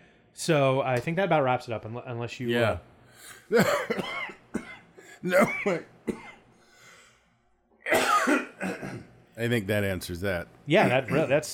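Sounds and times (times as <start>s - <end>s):
speech: 0.4s - 4.4s, 5.2s - 6.2s, 9.4s - 11.5s
person coughing harshly: 3.2s - 6.4s, 7.8s - 9.1s.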